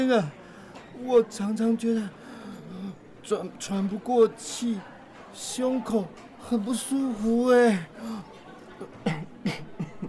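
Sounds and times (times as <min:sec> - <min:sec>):
speech: 0:00.0 - 0:00.4, 0:01.0 - 0:02.2, 0:03.3 - 0:09.0
murmuring background: 0:00.0 - 0:10.0
man ill with tuberculosis coughing: 0:09.0 - 0:10.0.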